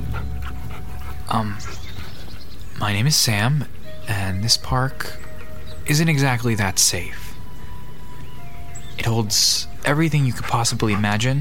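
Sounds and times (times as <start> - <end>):
three-headed dog whimpering: 0.0 - 2.7, 5.1 - 5.9, 10.4 - 11.3
dog panting: 0.0 - 7.0, 8.5 - 11.3
speech: 1.3 - 1.8, 2.8 - 5.2, 5.9 - 7.2, 9.0 - 11.3.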